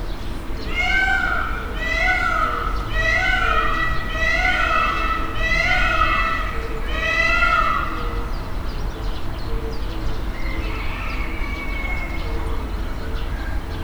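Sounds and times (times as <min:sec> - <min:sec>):
peacocks calling beside the lion enclosure at a zoo: 0:00.2 - 0:13.7.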